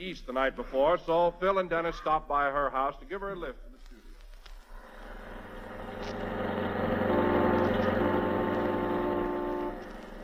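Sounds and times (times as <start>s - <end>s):
speech: 0.0s - 3.7s
car engine humming while driving: 4.7s - 10.2s.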